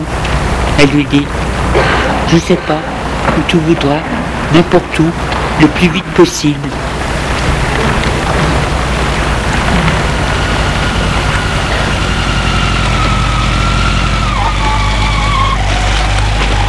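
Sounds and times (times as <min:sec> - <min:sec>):
high whine: 0:00.0 - 0:16.6
speech: 0:00.8 - 0:06.8
scooter engine running: 0:06.8 - 0:16.6.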